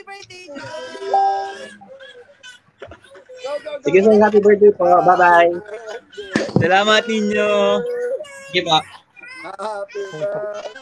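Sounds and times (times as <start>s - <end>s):
speech: 0.1s - 0.9s, 3.5s - 5.7s, 6.6s - 10.7s
young child crying: 0.5s - 2.3s, 5.2s - 10.7s.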